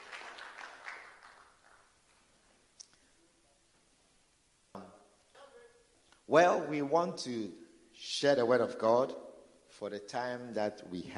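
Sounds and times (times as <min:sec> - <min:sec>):
audience clapping hands: 0:00.0 - 0:02.3
speech: 0:06.3 - 0:09.2, 0:09.8 - 0:11.1.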